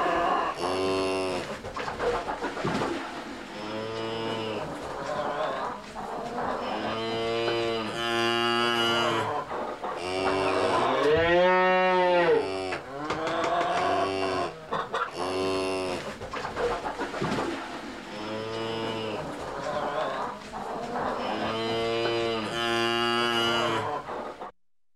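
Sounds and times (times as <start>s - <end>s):
cow mooing in a barn: 0.0s - 1.5s, 3.4s - 4.7s, 6.6s - 9.3s, 10.0s - 16.1s, 18.0s - 19.3s, 21.2s - 23.9s
busy barn background noise: 0.0s - 24.5s
hens in a barn: 0.0s - 24.5s.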